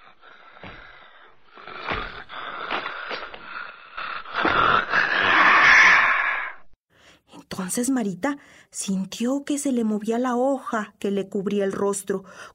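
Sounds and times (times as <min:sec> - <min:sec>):
heavy raspy monster breathing turning into a growl: 0:00.0 - 0:06.8
speech: 0:07.7 - 0:12.5.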